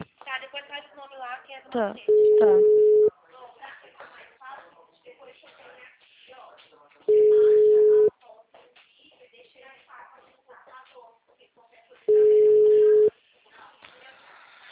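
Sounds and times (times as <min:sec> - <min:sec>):
speech: 0:01.0 - 0:02.9
telephone call ringing tones: 0:02.1 - 0:03.1, 0:07.1 - 0:08.1, 0:12.1 - 0:13.1.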